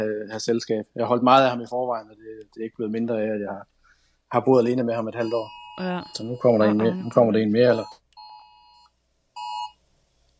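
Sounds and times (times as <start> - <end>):
speech: 0.0 - 8.0
phone alarm electronic beeps: 5.2 - 9.8.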